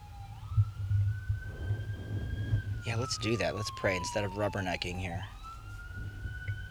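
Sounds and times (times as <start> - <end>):
ambulance siren wailing: 0.0 - 6.6
low rumbling traffic and engine noise: 0.0 - 6.6
speech: 2.8 - 5.4.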